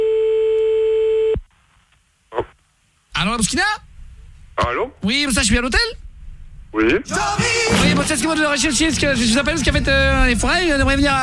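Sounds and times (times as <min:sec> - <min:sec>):
telephone tone after the other side hangs up: 0:00.0 - 0:01.4
speech: 0:03.4 - 0:03.8, 0:04.6 - 0:06.0, 0:06.8 - 0:11.2.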